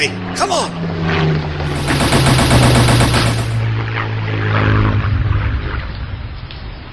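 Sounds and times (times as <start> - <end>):
steady droning aircraft engine: 0.0 - 6.9
rapid machine-gun fire from an aircraft making a strafing run over a street: 1.7 - 3.7.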